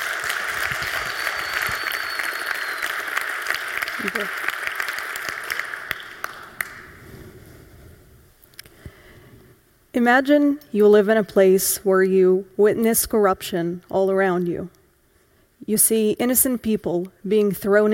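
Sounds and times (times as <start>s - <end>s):
audience applauding: 0.0s - 7.0s
speech: 4.0s - 4.4s, 10.0s - 14.8s, 15.7s - 17.9s.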